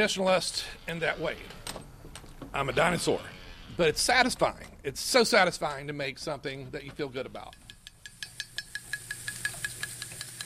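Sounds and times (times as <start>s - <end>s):
speech: 0.0s - 1.6s, 2.5s - 7.6s
black ink sizzling and crackling on printing press roller: 7.4s - 10.4s.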